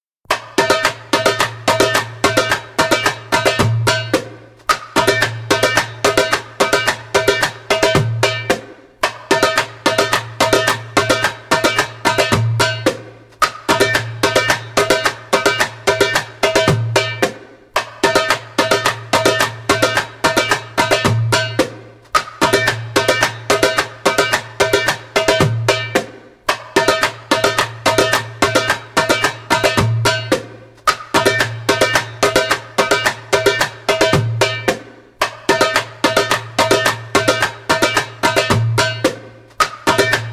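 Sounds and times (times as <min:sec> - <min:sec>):
djembe: 0:00.3 - 0:40.3.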